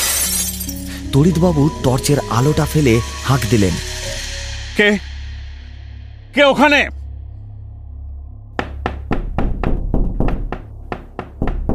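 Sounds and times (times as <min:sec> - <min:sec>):
speech: 0:00.7 - 0:03.9, 0:04.8 - 0:05.1, 0:06.4 - 0:07.0
hands pounding on doors in a house at night: 0:08.6 - 0:11.7.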